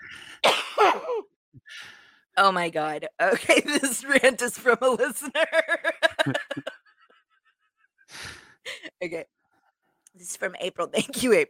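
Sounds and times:
person coughing hard with a raspy breathy texture: 0.4s - 1.3s
speech: 2.4s - 6.8s, 8.1s - 9.4s, 10.2s - 11.4s
laughter: 5.2s - 7.0s.

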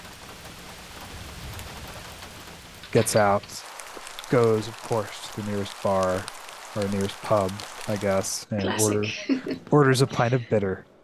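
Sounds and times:
rain falling on a hard surface: 0.0s - 10.3s
speech: 2.9s - 3.7s, 4.3s - 10.9s
laughter: 7.9s - 10.8s.

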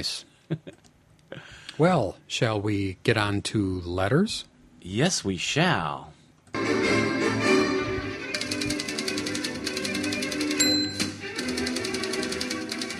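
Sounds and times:
speech: 0.0s - 0.8s, 1.8s - 6.8s
music: 6.6s - 12.9s
typewriter keystrokes: 8.4s - 12.9s
typewriter bell ding: 10.6s - 11.9s.

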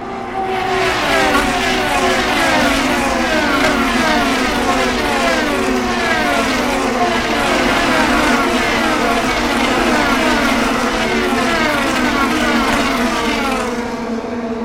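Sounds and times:
Indy race cars roaring past at high speed: 0.0s - 14.6s.

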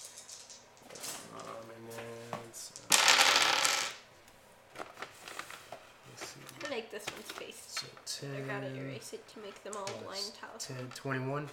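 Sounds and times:
six-sided dice tumbling across a table during a tabletop role-playing game: 0.0s - 1.7s, 2.7s - 4.0s
speech: 6.9s - 11.5s.

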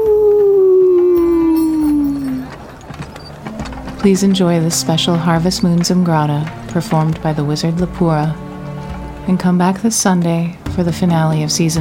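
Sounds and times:
person howling like a wolf: 0.0s - 2.4s
speech: 4.0s - 8.4s, 9.3s - 11.7s.

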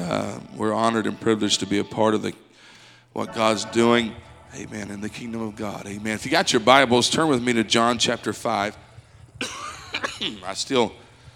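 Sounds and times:
speech: 0.1s - 2.5s, 3.1s - 8.8s, 10.2s - 11.0s
coughing and throat clearing: 9.3s - 10.5s.

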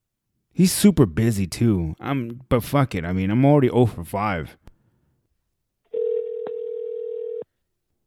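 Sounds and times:
speech: 0.6s - 4.6s
telephone ringing tone from a call being placed: 5.9s - 7.5s.

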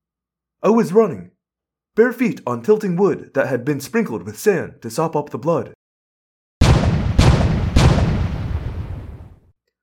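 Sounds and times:
speech: 0.6s - 1.3s, 2.0s - 5.8s
cannon blasts on a sailing warship: 6.6s - 9.4s.

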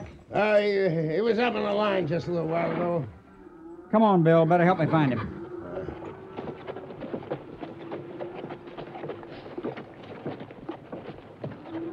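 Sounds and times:
speech: 0.3s - 3.2s, 3.9s - 5.4s
horse hooves clip-clopping at a walking pace: 5.4s - 11.9s.

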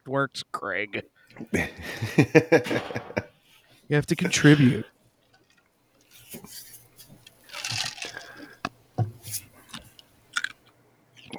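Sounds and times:
speech: 0.1s - 3.3s, 3.9s - 4.9s
laughter: 1.4s - 3.3s, 3.9s - 4.9s
crunchy chewing of something hard like ice: 3.5s - 11.3s.

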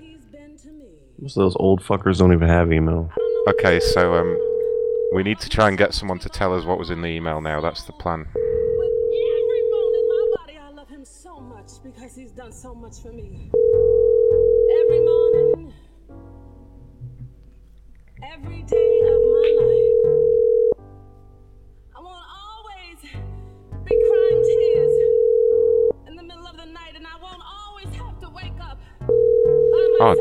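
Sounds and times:
speech: 0.6s - 4.5s, 5.1s - 8.4s, 12.5s - 14.0s, 18.2s - 19.8s, 30.0s - 30.1s
telephone tone while placing a call to a cell phone: 3.1s - 5.5s, 8.3s - 10.5s, 13.5s - 15.6s, 18.7s - 20.8s, 23.9s - 26.0s, 29.1s - 30.1s.

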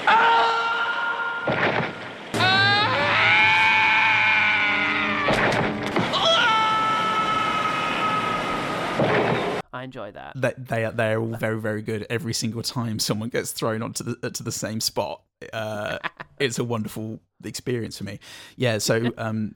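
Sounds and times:
comic falling-scream sound effect: 0.0s - 1.5s, 2.3s - 9.0s
speech: 9.8s - 19.5s.

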